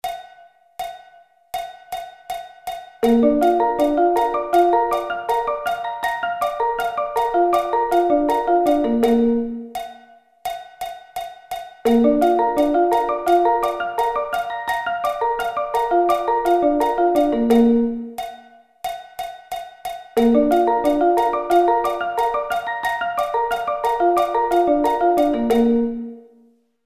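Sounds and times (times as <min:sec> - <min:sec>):
B-flat arpeggio inversions: 0:03.0 - 0:09.6, 0:11.9 - 0:18.1, 0:20.2 - 0:26.2.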